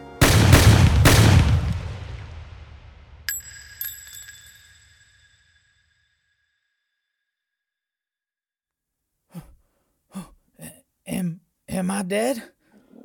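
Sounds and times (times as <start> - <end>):
gunshots: 0.2 - 3.3
sharp metallic rings: 3.3 - 6.8
speech: 11.8 - 12.6.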